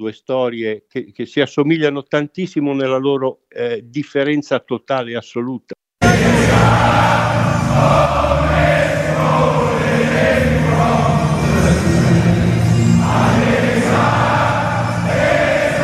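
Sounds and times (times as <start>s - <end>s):
speech: 0.0s - 5.8s, 7.8s - 8.3s
football supporters singing a stadium chant: 6.0s - 15.8s.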